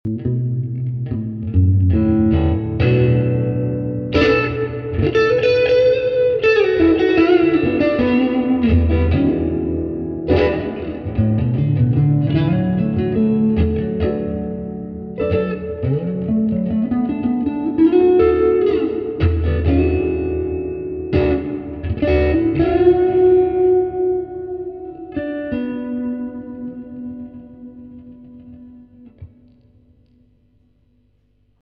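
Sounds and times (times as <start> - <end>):
blues guitar breakup with tube drive: 0.1 - 30.4.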